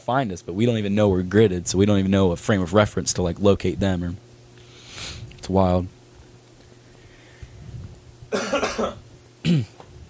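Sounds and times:
speech: 0.0 - 4.3, 5.5 - 6.0, 9.5 - 9.8
raspy coughing: 8.3 - 9.8.

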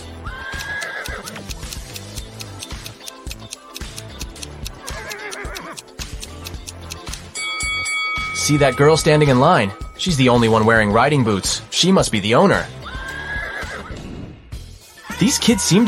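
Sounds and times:
horse neighing and whinnying: 0.2 - 1.4, 4.8 - 5.8, 12.7 - 14.0
speech: 8.5 - 12.8, 15.2 - 15.8.

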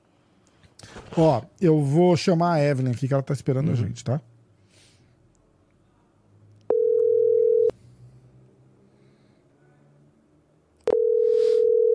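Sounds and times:
speech: 1.2 - 4.3
phone call ringback tone: 6.7 - 7.7, 10.9 - 11.9.

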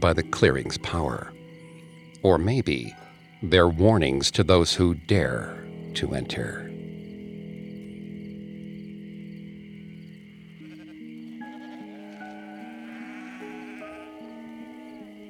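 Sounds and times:
speech: 0.0 - 1.4, 2.2 - 6.7
insects chirring: 0.0 - 15.2
sheep bleating in a field: 10.6 - 15.2.

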